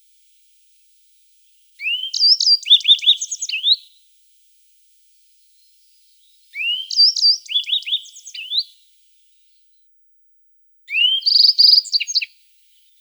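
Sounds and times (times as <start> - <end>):
yellow-browed bunting singing: 1.8 - 3.8, 6.6 - 8.7, 10.9 - 12.3.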